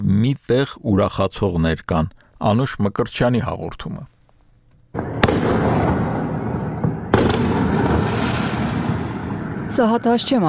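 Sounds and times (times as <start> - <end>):
speech: 0.1 - 4.2, 9.7 - 10.4
fireworks crackling and rumbling at night in city streets: 4.9 - 10.4.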